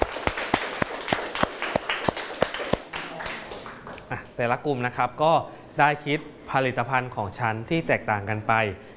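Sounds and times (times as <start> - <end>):
classroom of kids applauding for a classmate: 0.0 - 4.4
faint room murmur: 0.0 - 8.9
speech: 4.1 - 8.9.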